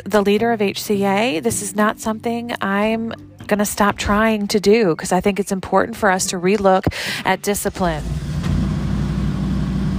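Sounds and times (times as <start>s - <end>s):
speech: 0.0s - 8.3s
car engine starting: 7.6s - 9.9s
car engine idling: 8.0s - 9.9s.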